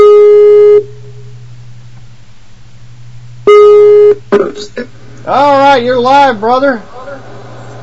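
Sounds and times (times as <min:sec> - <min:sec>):
electronic outgoing call ringing tone: 0:00.0 - 0:00.9, 0:03.5 - 0:04.2
speech: 0:04.4 - 0:06.9.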